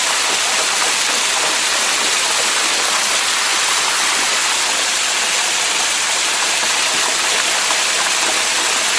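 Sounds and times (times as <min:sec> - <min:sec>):
water hose spraying: 0:00.0 - 0:08.9.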